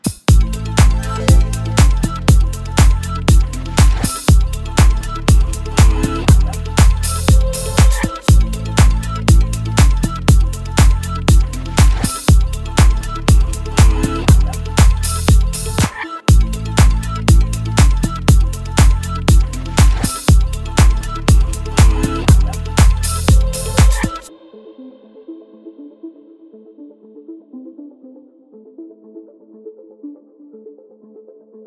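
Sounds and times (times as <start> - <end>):
song: 0.3 - 24.3.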